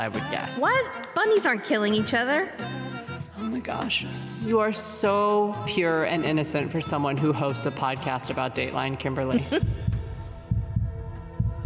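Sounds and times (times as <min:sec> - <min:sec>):
speech: 0:00.0 - 0:02.8, 0:03.6 - 0:09.8
low heartbeat thumping in paired beats: 0:09.5 - 0:11.6.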